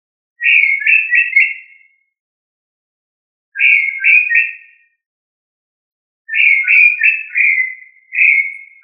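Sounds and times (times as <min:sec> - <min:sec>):
tinamou calling with quick falling slurred whistles: 0:00.4 - 0:02.2, 0:03.6 - 0:05.0, 0:06.3 - 0:08.8.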